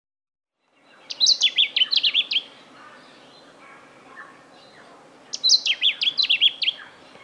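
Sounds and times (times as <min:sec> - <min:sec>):
faint background bird chirps: 0:00.6 - 0:07.2
Lemon-bellied flyrobin song in Papua New Guinea: 0:00.8 - 0:02.6, 0:05.3 - 0:07.2.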